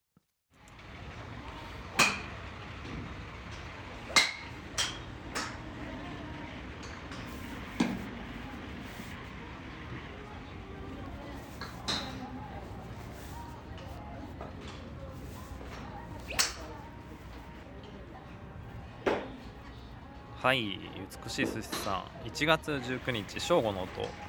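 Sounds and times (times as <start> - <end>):
steady outdoor hum: 0.5 - 24.2
golf clubs striking balls at a driving range: 1.9 - 5.7, 6.8 - 8.3, 11.5 - 12.6, 15.6 - 17.4
speech: 20.4 - 24.2.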